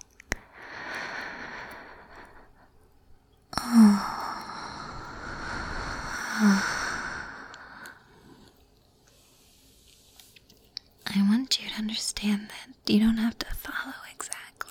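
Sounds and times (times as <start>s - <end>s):
slow deep breathing during a guided relaxation breathing exercise: 0.3s - 9.7s
speech: 12.0s - 14.0s.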